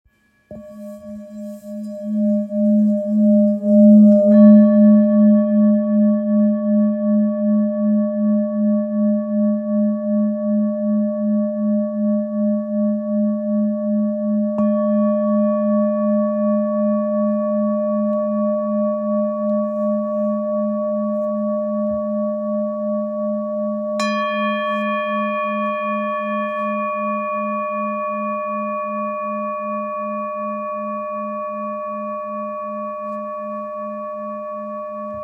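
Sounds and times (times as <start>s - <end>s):
980g singing bowl tuned to G sharp: 0.1s - 35.2s.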